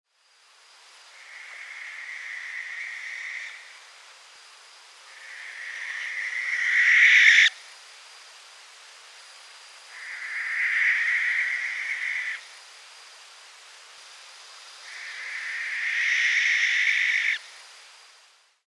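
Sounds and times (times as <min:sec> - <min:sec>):
Tyto alba barn owl calling: 0:01.2 - 0:03.7, 0:05.1 - 0:07.6, 0:09.9 - 0:12.4, 0:14.9 - 0:17.4.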